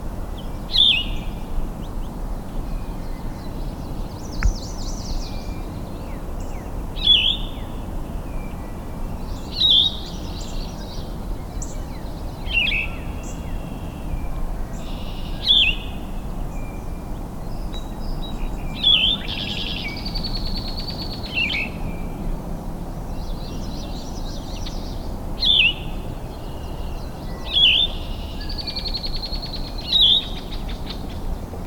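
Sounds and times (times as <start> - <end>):
Yellow-throated Vireo Vireo flavifrons song in Michigan: 0.3 - 31.6.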